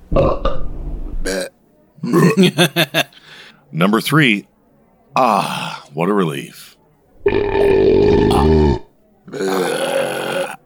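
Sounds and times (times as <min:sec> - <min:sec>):
loud belch: 0:00.1 - 0:00.6, 0:01.2 - 0:02.6, 0:07.2 - 0:10.6
speech: 0:02.1 - 0:03.0, 0:03.7 - 0:04.5, 0:05.2 - 0:07.4
laughter: 0:02.2 - 0:03.3.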